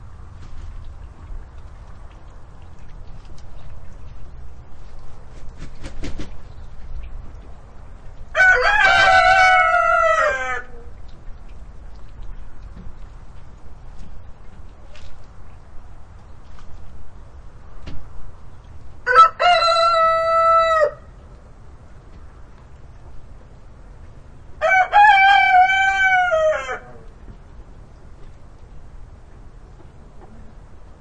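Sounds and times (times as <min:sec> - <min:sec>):
rooster crowing: 0:08.3 - 0:10.8, 0:19.0 - 0:21.1, 0:24.6 - 0:27.0.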